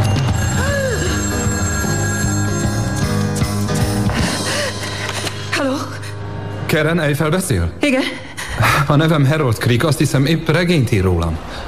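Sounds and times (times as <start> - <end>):
telephone bell ringing: 0.0 - 4.0
sustained tonal sounds: 0.0 - 7.9
speech: 6.8 - 11.6.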